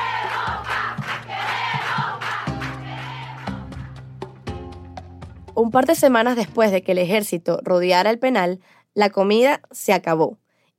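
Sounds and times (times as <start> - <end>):
large crowd chanting in unison: 0.0 - 3.9
sharp rhythmic claps: 0.0 - 4.6
speech: 5.6 - 10.4.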